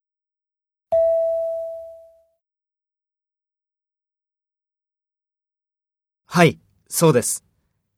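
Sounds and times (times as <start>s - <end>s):
electronic prompt tone cueing a learner to speak: 0.9s - 2.4s
speech: 6.3s - 7.5s.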